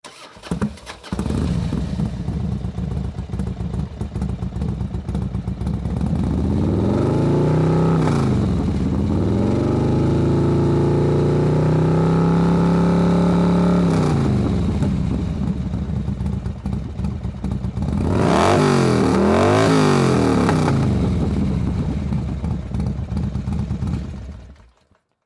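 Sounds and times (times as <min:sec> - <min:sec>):
low motorcycle engine: 0:00.5 - 0:25.0.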